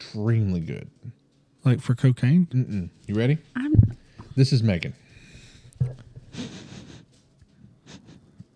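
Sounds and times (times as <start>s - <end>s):
speech: 0.1s - 5.0s
dog sniffing and snorting: 6.2s - 7.2s.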